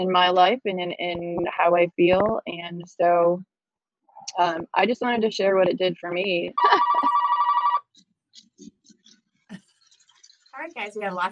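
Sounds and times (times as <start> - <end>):
speech: 0.0 - 3.5, 4.3 - 7.0, 10.6 - 11.3
laughter: 6.6 - 7.2
telephone ringing in a radio studio: 6.6 - 7.9.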